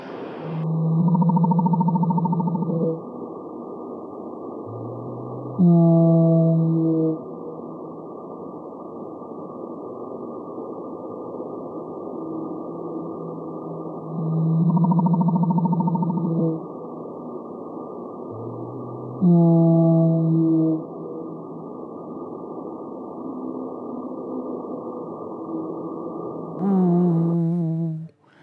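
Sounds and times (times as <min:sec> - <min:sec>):
blue whale calls underwater: 0:00.0 - 0:03.1, 0:04.6 - 0:07.6, 0:12.2 - 0:16.8, 0:18.3 - 0:21.6
steady ocean hiss: 0:00.0 - 0:28.4.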